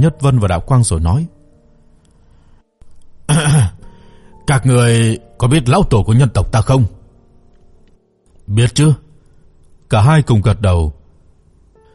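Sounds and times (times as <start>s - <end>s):
speech: 0.0s - 1.4s, 4.5s - 7.0s, 8.5s - 9.0s, 9.9s - 11.0s
gruff rasping throat clearing: 3.3s - 3.8s.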